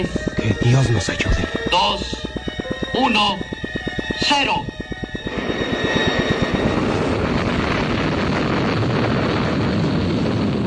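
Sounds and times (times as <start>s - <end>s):
speech: 0.0s - 2.2s, 3.0s - 3.6s, 4.2s - 4.7s
rocket engines roaring at launch: 0.0s - 10.6s.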